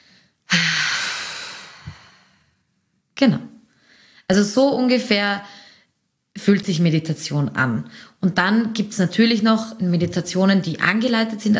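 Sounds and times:
forceful exhale through the mouth in a breathing exercise: 0.0 - 2.5
speech: 3.2 - 3.5, 4.3 - 5.5, 6.4 - 11.5.

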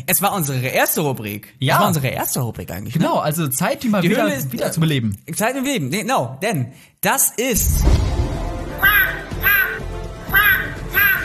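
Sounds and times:
speech: 0.0 - 8.9
loud harsh seagull cries: 8.8 - 11.2.

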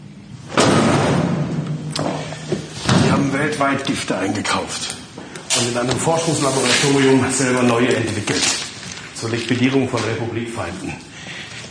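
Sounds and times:
thick book slammed onto a table: 0.6 - 2.2
speech: 3.2 - 8.6, 9.2 - 11.1.

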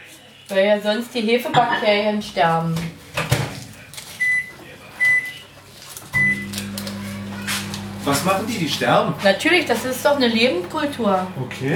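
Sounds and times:
speech: 0.5 - 3.0, 8.1 - 11.7
microwave oven humming while heating milk: 6.1 - 11.7
microwave oven beeping as buttons are pressed: 6.2 - 9.0.

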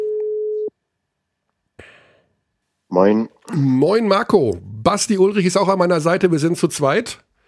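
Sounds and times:
telephone ringback tone while calling: 0.0 - 0.7
speech: 2.9 - 7.3.

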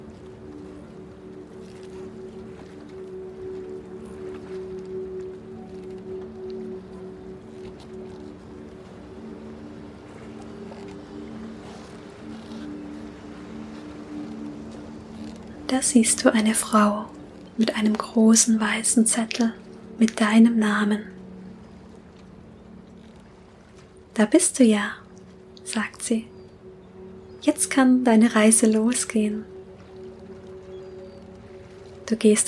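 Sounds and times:
breezy noise: 0.0 - 32.4
droning boat engine hum in a harbour: 0.0 - 32.4
speech: 15.7 - 21.1, 24.2 - 25.0, 25.7 - 26.3, 27.4 - 29.5, 32.1 - 32.4.

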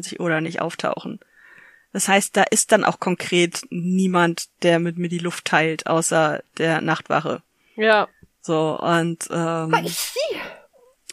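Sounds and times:
speech: 0.0 - 1.3, 1.9 - 10.6
person sneezing: 9.7 - 10.7.

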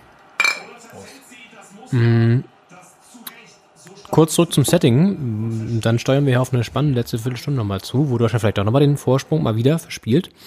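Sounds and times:
two drinks of cola clinking together in a toast at a wooden table: 0.4 - 0.8
speech: 0.9 - 2.5, 4.2 - 10.4.

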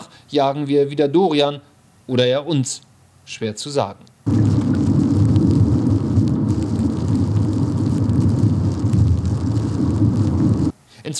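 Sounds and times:
speech: 0.3 - 4.4
deep low rumble: 4.3 - 10.7
heavy rain drumming on a car windshield: 4.3 - 10.7.

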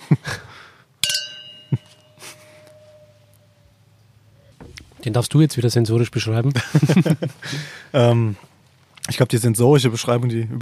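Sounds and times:
wine glasses clinking in a toast: 1.0 - 3.8
rustling: 1.6 - 5.9
soft thuds: 4.3 - 5.3
speech: 5.0 - 8.5, 9.1 - 10.6
laughter: 6.5 - 7.7.

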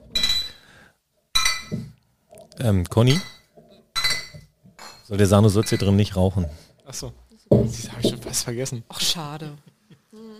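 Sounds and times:
glasses clinking during a toast: 0.1 - 0.6, 1.3 - 2.0, 3.0 - 6.2
speech: 2.6 - 3.3, 5.1 - 9.7.

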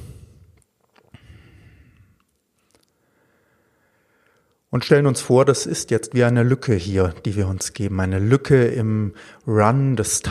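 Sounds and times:
slow deep breath in and out: 0.0 - 2.2, 2.9 - 4.6, 9.1 - 9.5
speech: 4.7 - 10.2.

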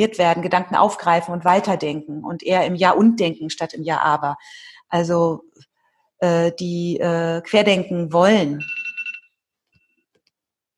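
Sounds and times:
speech: 0.0 - 5.6, 6.2 - 8.8
timer beeping with a rapid warbling electronic tone: 8.6 - 9.4.

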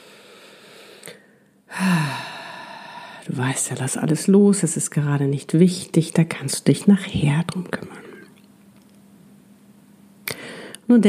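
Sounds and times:
person breathing deeply in and out during guided relaxation: 0.0 - 3.3, 10.3 - 10.8
speech: 3.4 - 8.0, 10.9 - 11.0.

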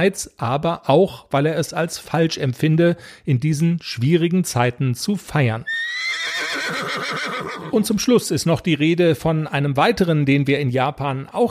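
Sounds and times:
speech: 0.0 - 6.2, 6.9 - 11.5
horse neighing: 5.7 - 7.8.

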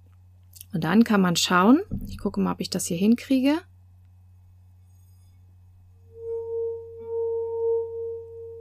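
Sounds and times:
low hum: 0.0 - 8.5
speech: 0.7 - 3.7
finger circling a wine glass rim ringing tone: 6.1 - 8.5.

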